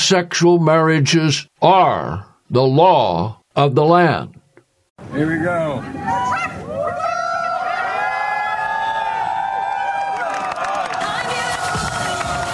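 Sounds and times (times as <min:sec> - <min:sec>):
speech: 0:00.1 - 0:04.4, 0:05.0 - 0:07.0
crowd of thousands cheering on the South Lawn: 0:05.1 - 0:12.5
crowd whoops, shouts and high-pitched yells: 0:06.0 - 0:12.5.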